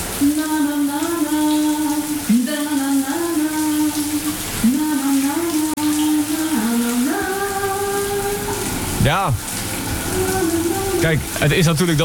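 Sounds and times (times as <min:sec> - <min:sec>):
woman singing a sustained melody under the shower: 0:00.0 - 0:08.7, 0:10.0 - 0:11.4
shower tap running warm water with a steady hiss: 0:00.0 - 0:12.0
speech: 0:09.1 - 0:09.5, 0:11.0 - 0:12.0.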